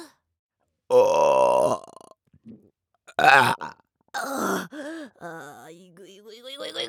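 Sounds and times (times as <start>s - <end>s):
person burping: 0.9s - 2.1s, 3.1s - 5.4s.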